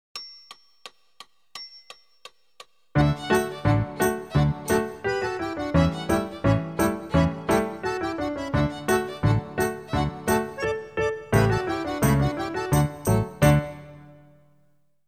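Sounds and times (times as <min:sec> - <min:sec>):
Irish melody: 0:03.0 - 0:14.3.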